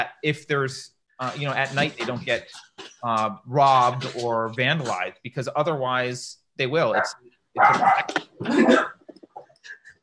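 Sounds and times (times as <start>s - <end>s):
speech: 0.0s - 8.9s
dog barking: 7.0s - 8.1s.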